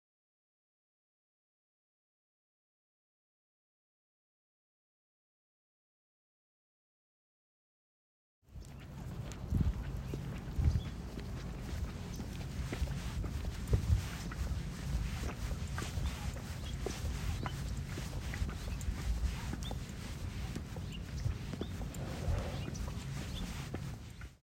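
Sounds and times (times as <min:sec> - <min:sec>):
nature ambience: 0:08.5 - 0:24.4.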